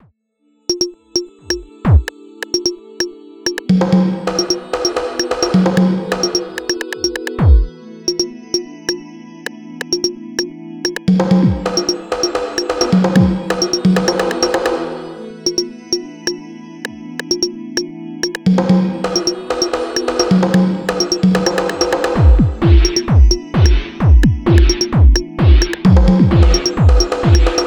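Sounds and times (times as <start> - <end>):
bongo drums: 0.7 - 2.7, 3.5 - 8.2, 10.9 - 15.7, 17.2 - 17.5, 18.2 - 27.6.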